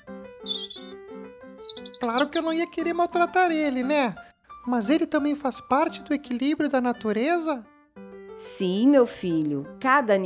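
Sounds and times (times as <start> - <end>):
small bird chirping in a tree: 0.0 - 2.6
speech: 2.0 - 7.7, 8.4 - 10.2.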